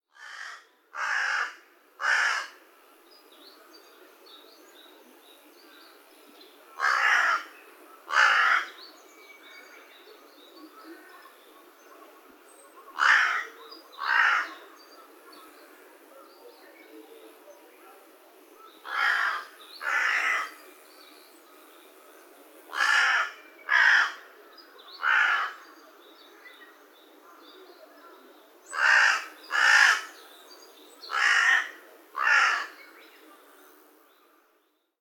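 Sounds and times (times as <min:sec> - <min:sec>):
carrion crow: 0:00.1 - 0:02.6, 0:06.7 - 0:08.8, 0:12.9 - 0:15.6, 0:18.6 - 0:20.6, 0:22.7 - 0:25.8, 0:28.7 - 0:30.2, 0:31.0 - 0:33.0.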